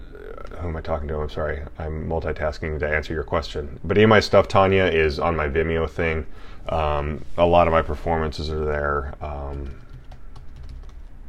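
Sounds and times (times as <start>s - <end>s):
low steady hum: 0.0s - 11.2s
speech: 0.6s - 9.8s
computer keyboard typing: 9.4s - 11.2s.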